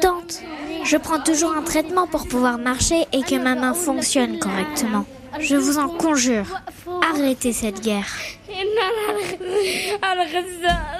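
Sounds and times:
speech: 0.3s - 10.9s
young girl in pain and under treatment sobbing: 8.2s - 10.9s.

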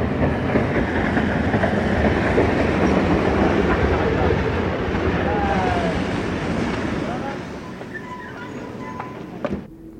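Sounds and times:
heavy freight rail wagons rolling through a rail yard: 0.0s - 9.9s
metallic squeals of rail wagons: 7.6s - 9.4s.

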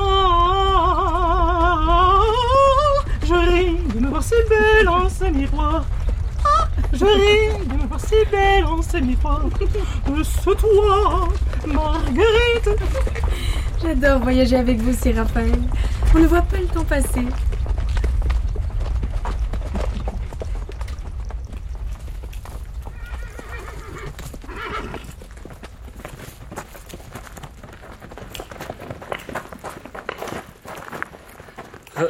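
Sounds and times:
low rumbling background: 0.0s - 28.1s
horse hooves clip-clopping: 0.0s - 32.0s
speech: 4.4s - 6.0s, 6.9s - 13.1s, 13.8s - 17.5s
horse whinny: 22.9s - 25.1s.

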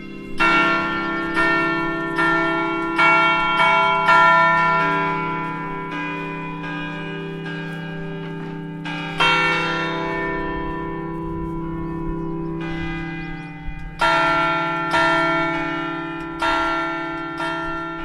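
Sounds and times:
abbey church bells with louvred sound-deflectors pealing in the abbey gardens: 0.0s - 18.0s.

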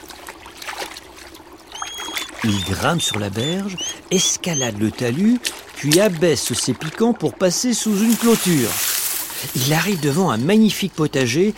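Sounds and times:
water splashing and trickling as a hedgehog swims across a stream: 0.0s - 11.5s
thin bird chirps: 1.7s - 4.8s
speech: 2.4s - 11.5s.

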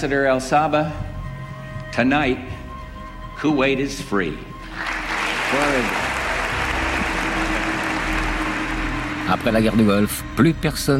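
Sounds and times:
speech: 0.0s - 1.1s, 1.9s - 2.6s, 3.4s - 4.9s, 5.5s - 6.0s, 9.3s - 10.9s
large crowd applauding: 4.7s - 10.3s.

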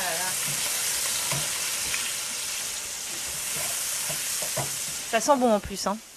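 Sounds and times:
guanciale sizzling and frying in a pan: 0.0s - 6.1s
speech: 5.1s - 6.1s.

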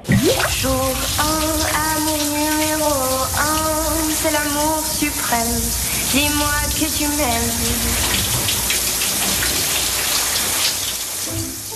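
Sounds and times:
woman singing sustained melodic phrases: 0.0s - 8.2s
hiss of a running shower: 0.0s - 11.7s
speech: 5.3s - 8.1s.

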